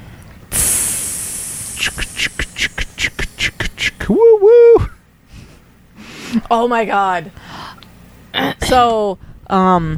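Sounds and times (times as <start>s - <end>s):
voice imitating a steam train hiss and chuffing: 0.5s - 5.0s
speech: 1.8s - 2.7s, 6.5s - 7.4s, 8.7s - 9.9s.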